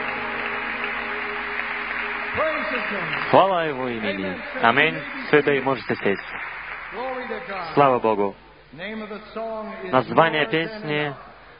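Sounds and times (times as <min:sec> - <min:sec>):
audience applauding: 0:00.0 - 0:08.2
speech: 0:02.4 - 0:11.3.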